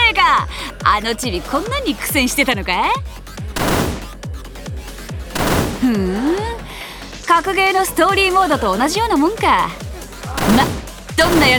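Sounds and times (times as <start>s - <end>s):
speech: 0.4s - 3.8s, 5.8s - 6.4s, 7.3s - 9.8s, 10.4s - 11.5s
video game gunfire shooting zombies: 3.6s - 4.3s, 5.4s - 6.5s, 10.4s - 11.5s.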